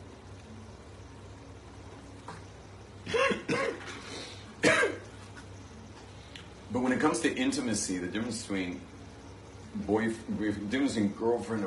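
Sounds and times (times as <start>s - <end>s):
person coughing after water went down the wrong pipe: 3.0s - 5.1s
speech: 6.7s - 9.0s, 9.8s - 11.6s.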